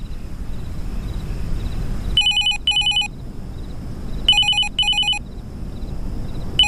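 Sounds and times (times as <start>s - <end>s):
low steady hum: 0.0s - 6.6s
telephone ringing with short electronic trills: 2.2s - 3.1s, 4.3s - 5.2s.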